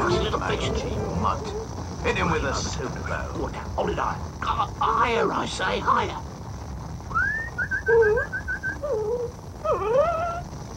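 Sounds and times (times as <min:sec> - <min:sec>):
low steady rumble: 0:00.0 - 0:10.7
speech: 0:00.5 - 0:06.3
dog whimpering: 0:07.8 - 0:10.5.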